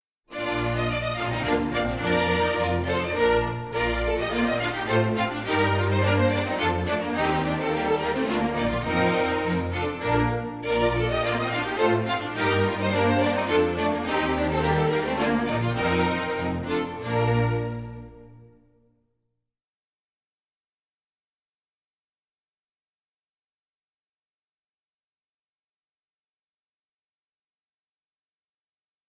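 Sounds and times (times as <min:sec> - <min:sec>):
solo hornpipe tune: 0:00.3 - 0:18.5.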